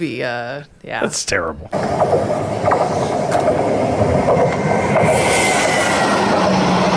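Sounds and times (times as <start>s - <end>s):
speech: 0.0s - 4.7s
faint rhythmic train clacks: 1.1s - 6.9s
played train sound effect rumbling: 1.4s - 6.9s
brighter hiss: 4.6s - 6.9s
thin metallic squeal: 5.0s - 6.9s.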